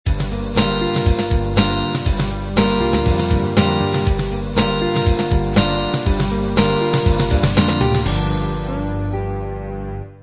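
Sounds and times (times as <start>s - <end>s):
UK pop music ending: 0.1s - 10.2s.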